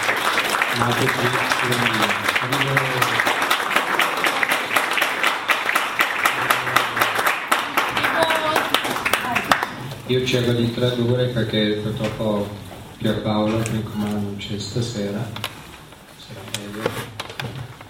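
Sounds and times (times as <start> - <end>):
voices over clapping: 0.0 - 9.8
audience applauding at an evening talk: 0.0 - 10.0
speech: 0.8 - 3.4, 10.1 - 15.4.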